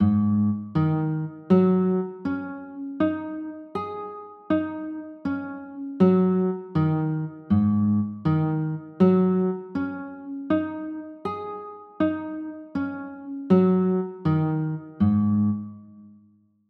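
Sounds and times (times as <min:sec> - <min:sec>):
G sharp 7sus4 guitar chord: 0:00.0 - 0:16.1.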